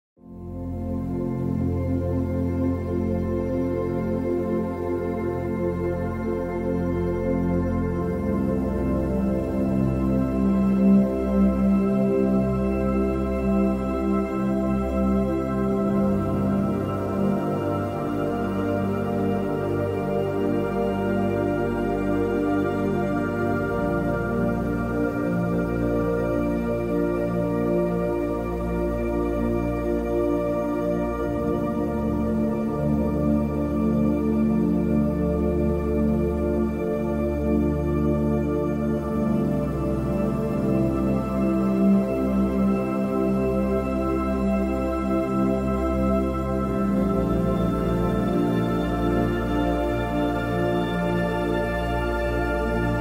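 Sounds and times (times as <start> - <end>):
852 Hz spiritual awakening tone music: 0.2 - 52.9.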